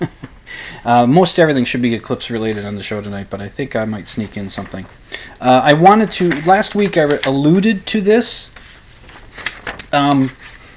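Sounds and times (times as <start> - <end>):
speech: 0.8 - 8.6, 9.9 - 10.5
sheet of paper being unfolded: 4.0 - 5.0, 5.7 - 10.7.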